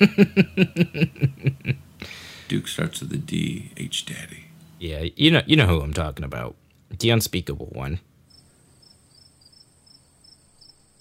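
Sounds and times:
laughter: 0:00.0 - 0:01.8
speech: 0:00.0 - 0:01.8, 0:02.5 - 0:08.1
crickets chirping: 0:08.2 - 0:10.9.

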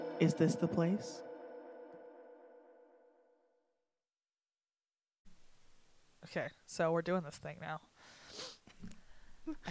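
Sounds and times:
speech: 0:00.2 - 0:01.3, 0:06.3 - 0:09.6
person with a cold sniffling through a stuffed-up nose: 0:08.2 - 0:08.7.

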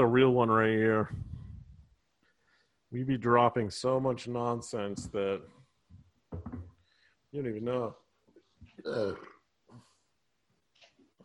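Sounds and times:
speech: 0:00.0 - 0:01.3, 0:02.9 - 0:05.6, 0:07.3 - 0:08.0, 0:08.7 - 0:09.8
soft vocal grunts and murmurs: 0:08.7 - 0:09.4
person burping: 0:08.8 - 0:09.5.

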